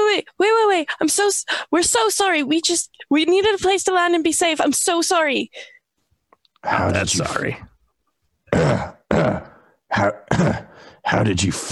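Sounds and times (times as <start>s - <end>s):
speech: 0.4s - 5.8s, 6.6s - 7.7s, 8.5s - 11.6s
person clearing throat: 8.5s - 10.8s
person coughing: 8.5s - 10.8s.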